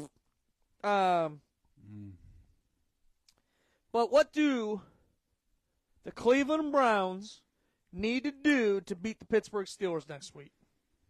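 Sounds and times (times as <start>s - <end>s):
buzzy mouth-made fart noise: 0.0s - 0.2s, 1.8s - 2.4s
speech: 0.8s - 2.2s, 3.9s - 4.9s, 6.0s - 10.6s
person making a sung or drawn-out vocal sound: 1.8s - 2.3s.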